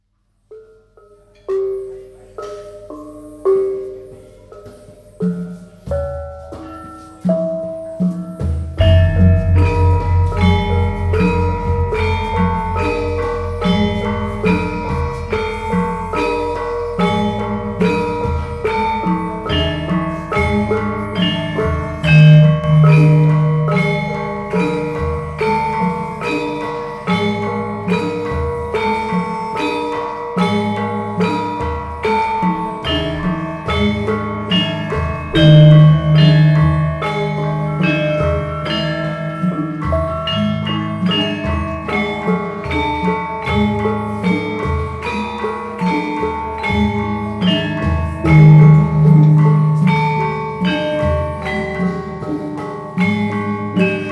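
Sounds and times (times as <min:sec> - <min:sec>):
Gamelan Kraton in Indonesia: 0:00.4 - 0:54.0.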